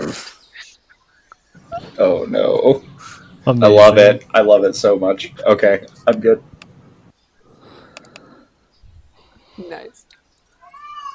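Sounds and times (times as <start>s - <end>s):
faint murmuring: 0.0s - 7.1s
speech: 2.0s - 6.5s
cat meowing loudly: 10.6s - 11.1s.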